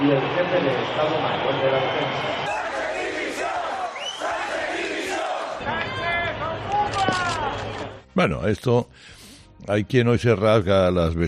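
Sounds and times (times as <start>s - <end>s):
speech: 0.0s - 2.6s, 8.2s - 11.2s
large outdoor crowd booing and jeering: 0.0s - 7.6s.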